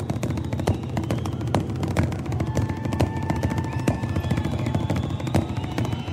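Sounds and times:
two people drumming on a wooden chair: 0.0 - 6.1.

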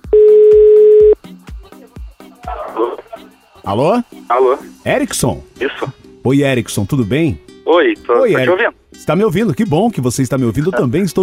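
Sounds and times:
telephone dial tone while dialing to place a call: 0.1 - 1.2
speech: 3.7 - 11.2.

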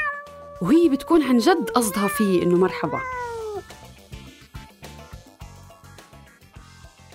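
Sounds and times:
cat giving a short gentle greeting meow: 0.0 - 3.8
speech: 0.6 - 3.4.

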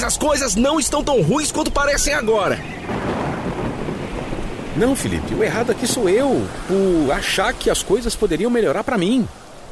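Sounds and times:
speech: 0.0 - 3.2, 4.8 - 9.4
steady heavy rain: 0.0 - 9.7
deep rolling thunder: 2.5 - 8.1.

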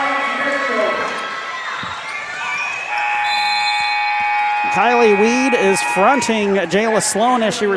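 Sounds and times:
crowd noise in a gym: 0.0 - 7.7
sneaker squeaks on a gym floor: 1.6 - 4.4
basketball game buzzer blaring in a gym: 2.9 - 6.6
speech: 4.8 - 7.7.

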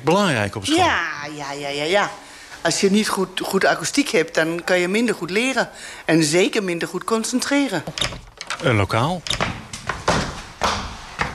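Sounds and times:
speech: 0.0 - 9.6
heavy thumps and knocks on a wooden classroom floor: 9.3 - 11.3.

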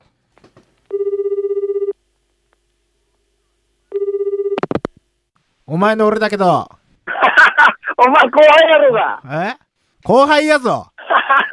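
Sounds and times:
phone line ringback tone while placing a call: 0.9 - 2.0, 3.9 - 4.7
speech: 5.7 - 6.8, 8.0 - 11.5
laughter: 7.1 - 8.0, 11.0 - 11.5.

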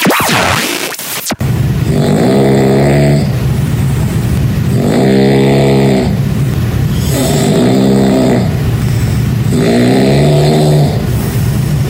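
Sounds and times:
constant low drone: 1.3 - 11.8
sleeping person snoring heavily at night: 1.9 - 3.4, 4.7 - 6.2, 7.0 - 11.4.

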